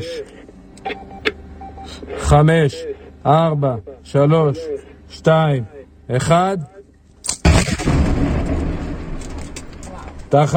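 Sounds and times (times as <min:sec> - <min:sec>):
speech: 0:02.3 - 0:06.7, 0:10.3 - 0:10.5
heavy controlled detonation with rumbling roar and debris crackle: 0:07.4 - 0:10.3.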